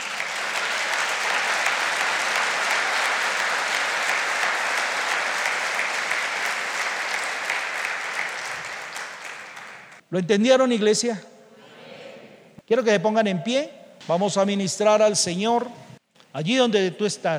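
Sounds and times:
large crowd applauding: 0:00.0 - 0:10.0
speech: 0:10.1 - 0:11.4, 0:12.7 - 0:15.8, 0:16.4 - 0:17.3.

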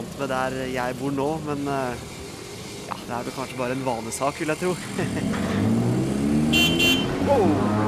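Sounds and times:
busy street noise: 0:00.0 - 0:07.8
tuk-tuk auto rickshaw small engine buzzing while driving past: 0:00.0 - 0:07.8
speech: 0:00.2 - 0:02.1, 0:03.1 - 0:05.6, 0:06.5 - 0:07.8
tuk-tuk auto rickshaw horn toots: 0:06.4 - 0:07.8.

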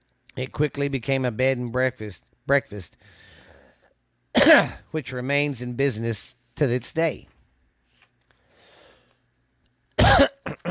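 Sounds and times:
speech: 0:00.4 - 0:03.3, 0:04.4 - 0:07.3
person coughing into the microphone: 0:04.4 - 0:04.9, 0:10.0 - 0:10.6.

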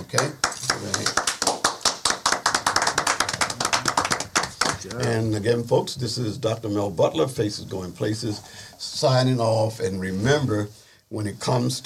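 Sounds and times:
hands clapping: 0:00.0 - 0:05.3
speech: 0:00.1 - 0:00.4, 0:04.9 - 0:11.8.

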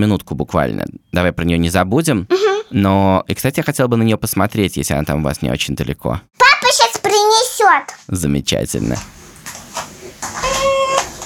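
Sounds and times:
speech: 0:00.0 - 0:09.6
domestic cat meowing: 0:10.4 - 0:11.2.

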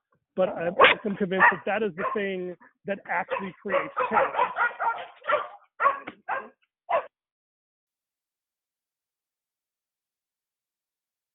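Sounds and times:
speech: 0:00.4 - 0:04.6
dog barking through a fence: 0:00.8 - 0:02.4, 0:03.2 - 0:07.1.

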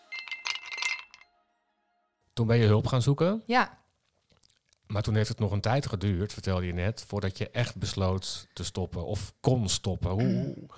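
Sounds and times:
glasses clinking in a toast: 0:00.0 - 0:01.3
speech: 0:02.4 - 0:03.8, 0:04.9 - 0:10.7.

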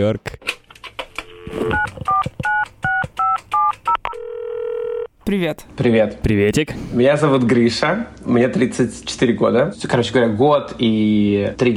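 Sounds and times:
speech: 0:00.0 - 0:00.4, 0:05.3 - 0:11.7
phone touch-tone dialing beeps: 0:01.2 - 0:05.1.

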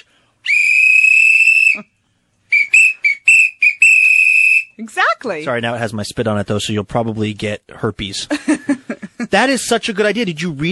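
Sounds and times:
shrill sports whistle blasts: 0:00.4 - 0:01.9, 0:02.5 - 0:04.8
speech: 0:05.2 - 0:10.7.

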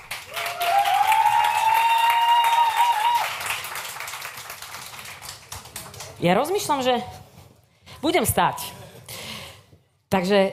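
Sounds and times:
room full of people applauding: 0:00.0 - 0:06.2
speech: 0:06.2 - 0:07.2, 0:08.0 - 0:08.8, 0:10.1 - 0:10.5.

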